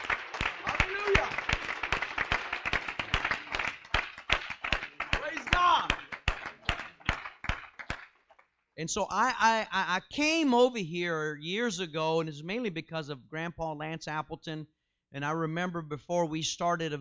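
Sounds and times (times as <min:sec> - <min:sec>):
crowd clapping hands: 0:00.0 - 0:08.6
speech: 0:08.8 - 0:16.9.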